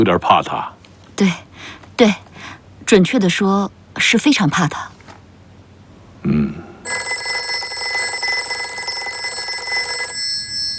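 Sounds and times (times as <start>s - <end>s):
speech: 0.0s - 2.3s, 2.9s - 4.9s, 6.2s - 7.4s
old-style telephone bell ringing: 6.9s - 10.7s.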